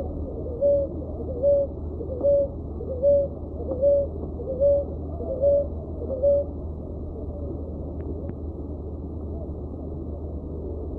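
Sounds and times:
dove giving a low hooting coo: 0.0s - 6.5s
constant low hum: 0.0s - 10.9s.

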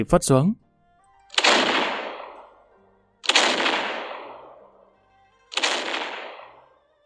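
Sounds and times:
cannon blasts from a naval fleet's war junks: 1.3s - 4.9s, 5.5s - 6.8s.

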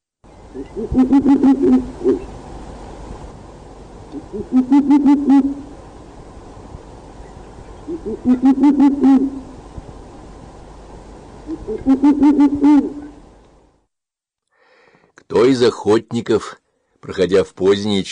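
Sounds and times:
owls hooting: 0.5s - 2.3s, 4.1s - 5.7s, 7.8s - 9.6s, 11.5s - 13.2s
speech: 0.5s - 2.4s, 4.1s - 5.6s, 8.0s - 9.4s, 11.7s - 13.0s, 15.3s - 18.1s.

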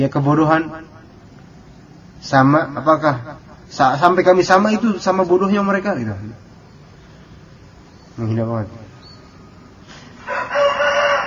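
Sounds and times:
speech: 0.0s - 0.9s, 2.2s - 6.5s, 8.2s - 8.8s
rooster crowing: 10.0s - 11.2s.

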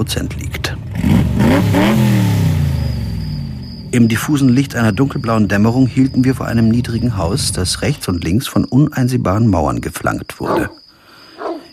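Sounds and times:
speech: 0.0s - 2.3s, 3.9s - 10.8s
car engine revving as the car drives off: 0.0s - 7.8s.

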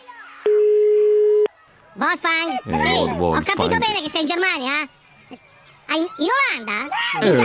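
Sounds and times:
long steady telephone tone: 0.5s - 1.5s
speech: 2.0s - 5.0s, 5.9s - 7.4s.

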